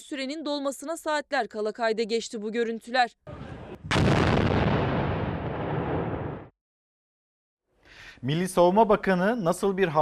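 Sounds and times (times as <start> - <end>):
speech: 0.1 - 3.4, 8.2 - 10.0
heavy artillery strike on regime targets: 3.4 - 6.5.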